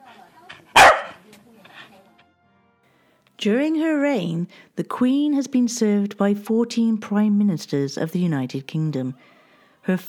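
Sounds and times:
single sharp loud dog bark: 0.7 - 1.2
speech: 3.4 - 10.0.

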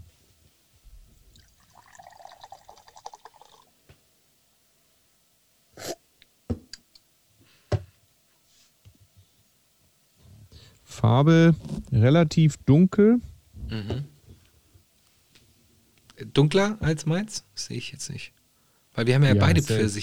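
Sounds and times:
iced tea pouring from a can into a glass: 1.4 - 3.7
speech: 11.0 - 14.0, 16.4 - 18.4, 19.0 - 20.0.

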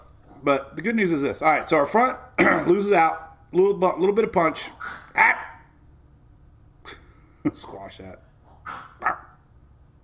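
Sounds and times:
low hum: 0.0 - 10.0
speech: 0.4 - 5.4, 7.4 - 9.2
dog barking: 8.7 - 9.4.

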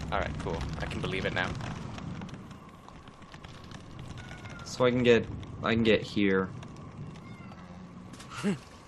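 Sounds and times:
speech: 0.1 - 1.8, 4.8 - 6.6, 8.4 - 8.7
upset cat meowing: 4.2 - 4.7, 7.2 - 7.9.

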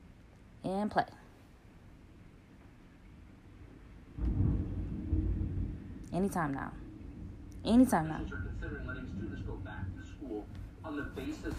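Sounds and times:
speech: 0.6 - 1.2, 6.2 - 6.8, 7.6 - 11.5
deep low thunder rumbling outside during storm: 4.0 - 11.5.

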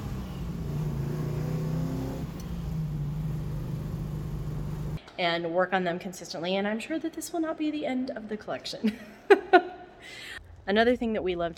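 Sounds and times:
car engine revving: 0.0 - 5.0
speech: 5.2 - 11.5.

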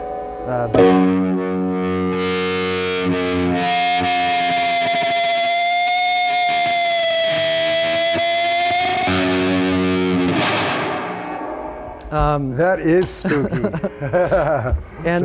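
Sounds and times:
distorted electric guitar chord and howling feedback with eerie ghostly reverb: 0.0 - 12.4
speech: 0.5 - 1.4, 12.2 - 15.2
laughter: 12.6 - 15.2.

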